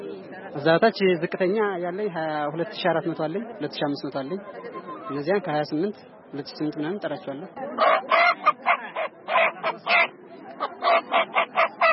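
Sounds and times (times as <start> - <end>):
speech: 0.5 - 8.1
chickens squawking and clucking at a market: 7.7 - 11.9.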